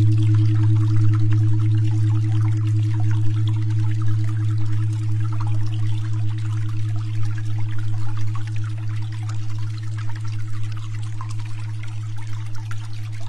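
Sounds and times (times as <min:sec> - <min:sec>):
dense trickling and splashing: 0:00.0 - 0:13.2
steady low tone near 210.42 Hz: 0:00.0 - 0:13.2
strong deeper drone: 0:00.0 - 0:13.2.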